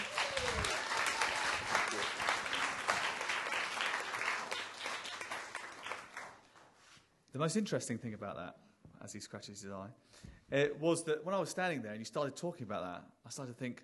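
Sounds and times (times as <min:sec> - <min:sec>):
large audience applauding: 0:00.0 - 0:06.6
speech: 0:07.4 - 0:13.8.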